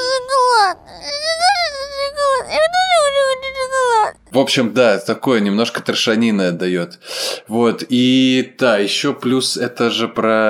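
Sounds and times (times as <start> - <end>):
young boy crying over being denied sweets: 0.0 - 4.3
speech: 4.4 - 10.4.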